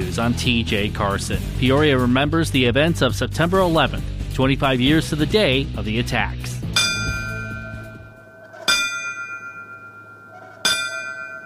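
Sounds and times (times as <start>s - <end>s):
speech: 0.1s - 6.6s
large ceremonial bell tolling: 6.6s - 11.4s.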